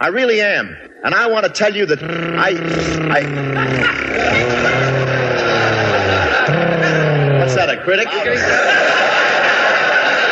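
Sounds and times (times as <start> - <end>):
speech: 0.0 - 5.1, 7.5 - 9.2
person imitating a revving motorcycle engine: 1.9 - 7.8
laughter: 1.9 - 10.3.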